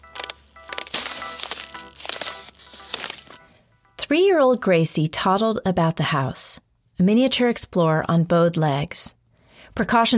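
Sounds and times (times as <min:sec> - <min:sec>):
glass shattering into pieces: 0:00.9 - 0:01.9
speech: 0:04.1 - 0:09.2, 0:09.8 - 0:10.1.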